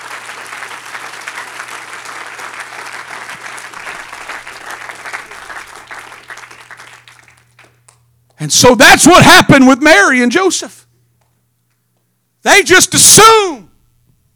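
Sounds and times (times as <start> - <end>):
large crowd applauding: 0.0 - 8.0
speech: 8.4 - 10.8, 12.4 - 13.6.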